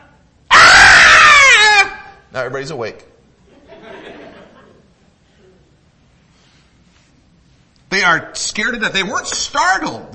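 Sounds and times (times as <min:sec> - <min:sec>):
person screaming like a terrified child: 0:00.5 - 0:02.2
speech: 0:02.3 - 0:03.1, 0:08.0 - 0:10.1
laughter: 0:03.5 - 0:05.0.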